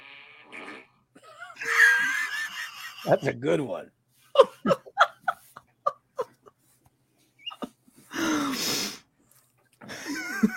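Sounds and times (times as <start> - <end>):
buzzy fart sound effect played through a small smart speaker: 0.0 - 1.0
laughter: 1.3 - 3.4, 4.4 - 6.5, 9.9 - 10.5
speech: 3.0 - 4.0, 4.6 - 4.9.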